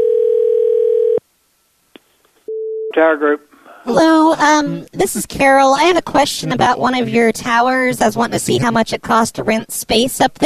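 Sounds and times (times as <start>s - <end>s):
telephone dial tone: 0.0s - 1.2s
speech: 3.0s - 10.4s.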